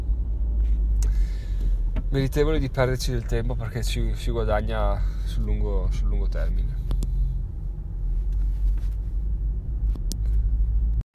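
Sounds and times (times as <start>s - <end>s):
road rumble inside a car moving slowly behind a truck: 0.0s - 11.1s
speech: 2.1s - 6.8s.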